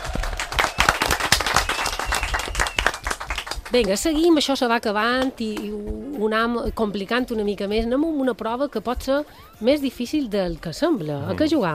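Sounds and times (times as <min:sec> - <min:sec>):
small audience clapping: 0:00.0 - 0:04.0
speech: 0:03.7 - 0:11.7.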